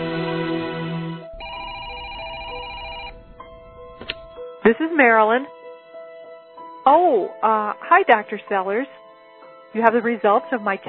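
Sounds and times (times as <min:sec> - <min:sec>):
telephone ringing with an electronic trill: 0:01.3 - 0:03.8
buzzing harmonic tone: 0:01.3 - 0:04.6
speech: 0:04.7 - 0:05.6, 0:06.9 - 0:09.0, 0:09.7 - 0:10.8.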